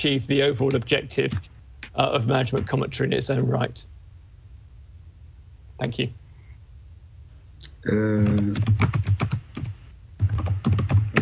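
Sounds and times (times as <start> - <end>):
speech: 0.0 - 3.9, 5.8 - 6.2, 7.8 - 9.2
person humming: 7.6 - 8.8
computer keyboard typing: 8.3 - 11.2.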